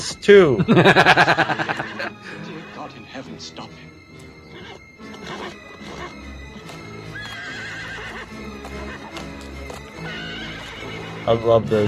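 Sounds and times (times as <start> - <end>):
speech: 0.0 - 4.0, 11.2 - 11.8
steady music: 0.0 - 11.8
laughter: 0.5 - 3.0
horse neighing: 4.3 - 11.5.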